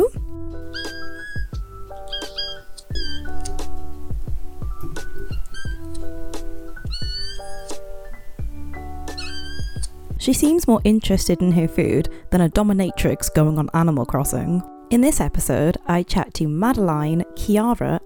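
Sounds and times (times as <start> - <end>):
female kitten meowing with high thin cries: 0.7 - 3.6, 5.3 - 6.0, 6.8 - 7.8, 9.1 - 10.0
speech: 10.3 - 18.0.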